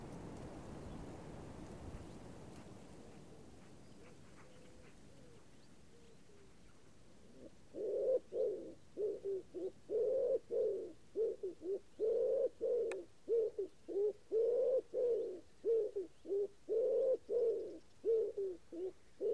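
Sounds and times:
common wood pigeon cooing: 3.1s - 19.3s.

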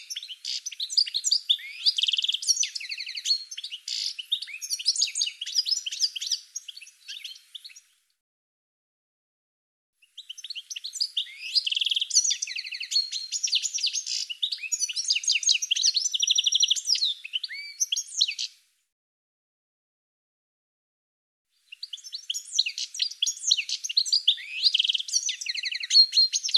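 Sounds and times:
bird twittering: 0.0s - 7.9s, 10.1s - 18.6s, 21.7s - 26.5s.

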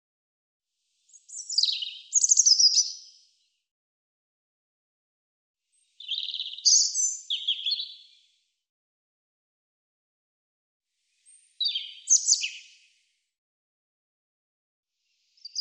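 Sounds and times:
European robin song with high thin notes and trills: 1.1s - 3.3s, 5.7s - 8.3s, 11.2s - 13.0s, 15.4s - 15.5s.

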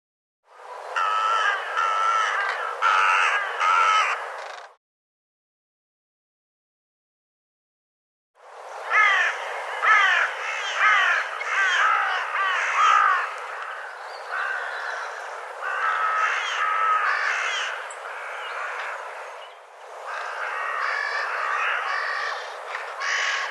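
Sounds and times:
bird giving harsh nasal cawing calls: 1.0s - 4.8s, 8.8s - 19.4s, 20.0s - 23.4s.

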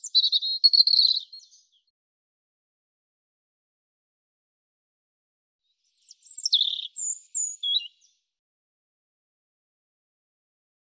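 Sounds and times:
European robin singing: 0.0s - 1.9s, 5.9s - 8.2s.

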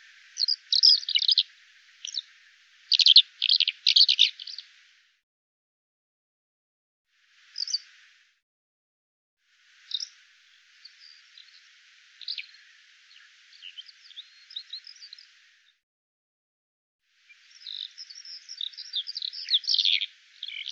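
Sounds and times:
bird chirping and twittering: 0.0s - 4.7s, 7.5s - 7.9s, 9.9s - 10.2s, 10.8s - 15.6s, 17.3s - 20.7s.

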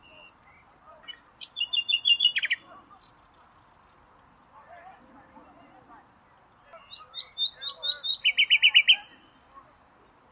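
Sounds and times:
bird singing whistled notes: 0.0s - 4.4s, 6.7s - 9.4s.

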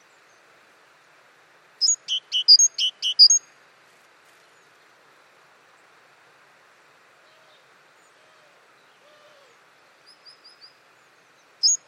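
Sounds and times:
great tit sharp high calls: 1.8s - 3.4s, 11.4s - 11.8s.

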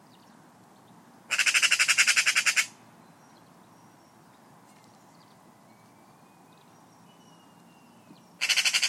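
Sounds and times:
faint background hiss: 0.0s - 8.8s
bird giving a harsh rasping call: 1.3s - 2.8s, 8.4s - 8.8s.

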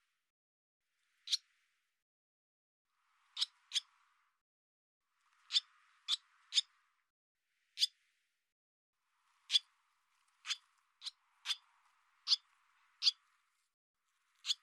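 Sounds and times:
barn swallow calls: 1.2s - 1.5s, 3.1s - 4.2s, 5.3s - 6.8s, 7.7s - 8.0s, 9.3s - 13.4s, 14.4s - 14.6s.

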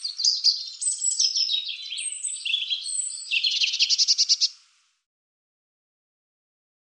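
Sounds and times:
European robin singing: 0.0s - 4.6s.

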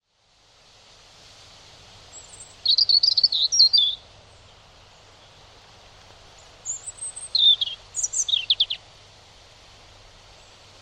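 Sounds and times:
European robin singing: 2.1s - 4.5s, 6.6s - 8.8s.

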